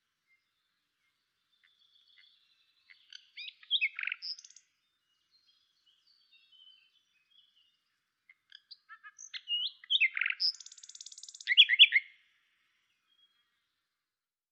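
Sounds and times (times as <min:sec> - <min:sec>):
common nightingale Luscinia megarhynchos song with clicks and buzzy trill: 0:00.0 - 0:14.1.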